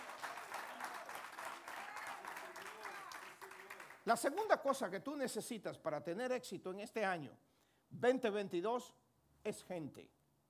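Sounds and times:
audience applauding: 0:00.0 - 0:04.2
speech: 0:04.1 - 0:10.2.

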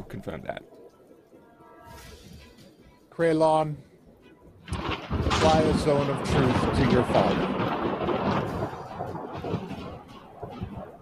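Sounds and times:
speech: 0:00.1 - 0:00.8, 0:03.2 - 0:03.9, 0:05.4 - 0:07.7
deep rolling rumble of thunder from a storm outside: 0:04.6 - 0:10.9.

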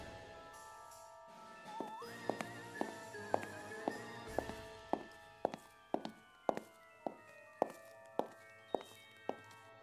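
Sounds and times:
firm footsteps walking at an even pace: 0:01.8 - 0:09.5.

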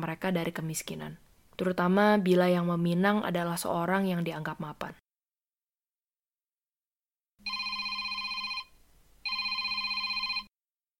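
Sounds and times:
speech: 0:00.0 - 0:05.0
mobile phone ringing: 0:07.4 - 0:10.5.

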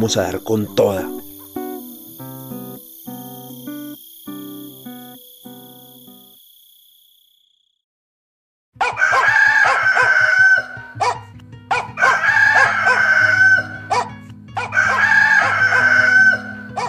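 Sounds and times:
speech: 0:00.0 - 0:01.2
speckled rooster crowing at a house in the early morning: 0:08.8 - 0:16.8.

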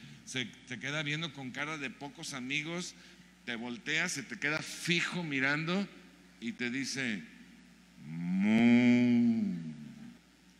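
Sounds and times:
speech: 0:00.3 - 0:07.3, 0:08.0 - 0:09.0
cow mooing: 0:08.0 - 0:09.9.

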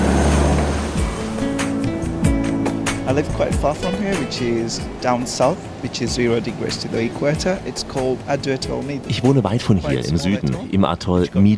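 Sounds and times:
seaplane taxiing slowly on water, engine droning: 0:00.0 - 0:09.1
splashing waves and spray: 0:00.0 - 0:09.4
speech: 0:03.1 - 0:11.5.

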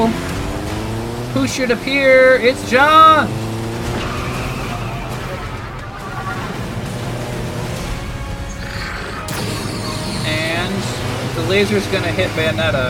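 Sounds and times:
motorcycle engine roaring past: 0:00.0 - 0:12.8
speech: 0:01.4 - 0:03.4, 0:11.5 - 0:12.8
screeching: 0:03.8 - 0:11.3.

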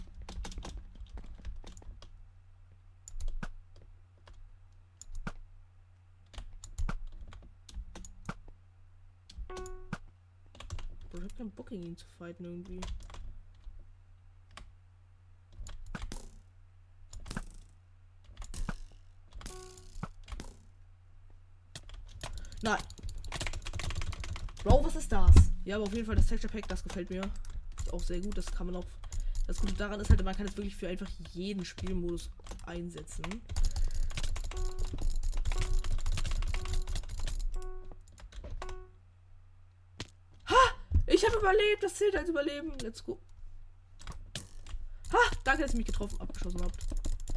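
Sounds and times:
computer keyboard typing: 0:00.0 - 0:02.1, 0:03.1 - 0:03.6, 0:05.0 - 0:05.4, 0:06.3 - 0:08.4, 0:09.3 - 0:11.9, 0:12.6 - 0:13.3, 0:21.8 - 0:38.9, 0:44.0 - 0:47.3
low steady hum: 0:00.0 - 0:47.3
speech: 0:11.2 - 0:13.1, 0:22.7 - 0:22.9, 0:24.6 - 0:33.6, 0:41.3 - 0:43.3, 0:45.6 - 0:46.8.

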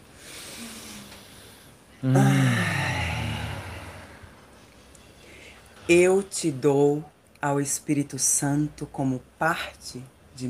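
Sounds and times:
deep breath out in a long airy sigh: 0:00.1 - 0:04.5
speech: 0:02.0 - 0:02.7, 0:05.9 - 0:10.4.

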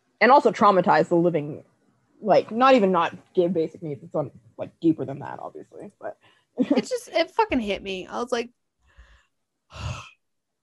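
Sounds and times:
speech: 0:00.2 - 0:08.6, 0:09.7 - 0:10.1
person yawning with a low voiced groan: 0:09.7 - 0:10.1.

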